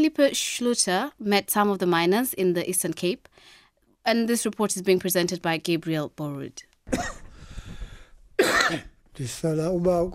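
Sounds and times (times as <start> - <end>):
speech: 0.0 - 7.2, 8.4 - 10.1
single harsh dry chesty cough: 6.9 - 7.3, 8.4 - 9.0.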